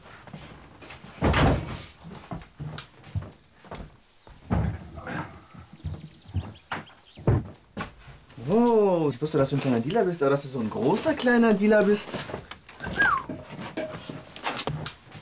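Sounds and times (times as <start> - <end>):
door knocks and creaks: 0.2 - 10.0, 10.7 - 15.2
door pulled shut with a solid thud: 1.2 - 1.8, 4.4 - 6.6
speech: 8.5 - 12.5.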